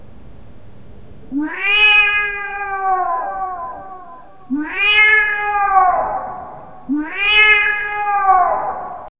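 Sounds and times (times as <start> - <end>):
cat yowling with echo: 1.3 - 9.1.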